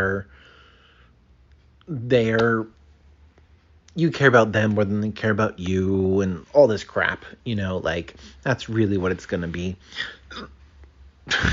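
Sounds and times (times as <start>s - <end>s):
speech: 1.9s - 2.8s, 4.0s - 10.6s, 11.3s - 11.5s
man burping: 10.0s - 10.6s.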